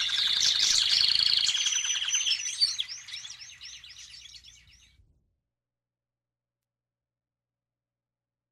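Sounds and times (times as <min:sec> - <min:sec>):
canary song of rapid high trills and whistled notes: 0:00.0 - 0:05.0.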